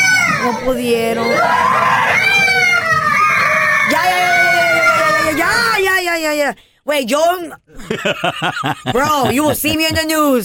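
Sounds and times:
several children screaming in fright at masked people: 0.0 - 5.7
speech: 0.4 - 2.0, 6.1 - 10.4
laughter: 7.8 - 10.4.

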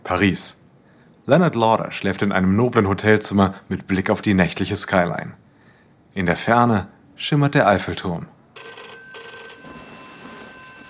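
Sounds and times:
speech: 0.1 - 0.6, 1.3 - 5.4, 6.1 - 8.4
telephone in a hotel room in Paris ringing with an electronic trill: 8.6 - 10.8.

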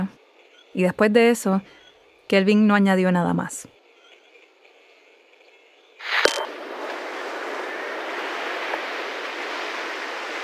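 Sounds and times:
speech: 0.8 - 3.8
beach waves crashing: 6.0 - 10.4
steady roar of surf: 6.0 - 10.4.

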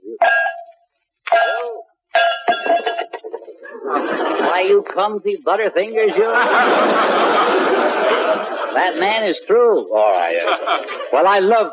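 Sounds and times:
bells clanging: 0.2 - 3.2
laughter: 2.6 - 4.9, 6.0 - 9.1, 10.0 - 11.7
speech: 3.9 - 11.7.

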